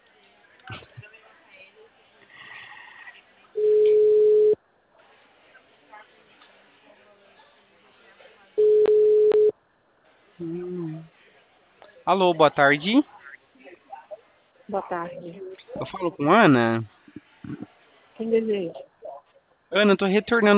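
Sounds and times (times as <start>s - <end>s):
low noise: 0.0s - 20.5s
telephone ringback tone while a call waits to be answered: 3.6s - 4.6s, 8.6s - 9.5s
speech: 12.1s - 13.2s, 14.7s - 17.6s, 18.2s - 18.9s, 19.7s - 20.5s.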